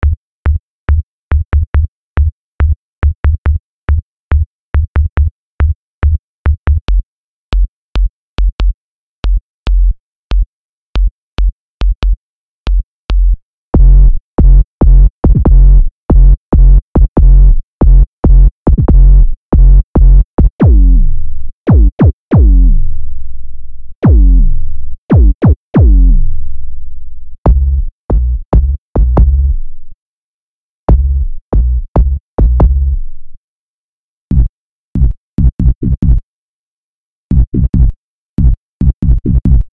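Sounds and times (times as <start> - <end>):
analog kick drums: 0.0 - 21.0, 21.7 - 22.6, 24.0 - 24.4, 25.1 - 26.1, 27.5 - 29.5, 30.9 - 32.8, 34.3 - 36.2, 37.3 - 39.7.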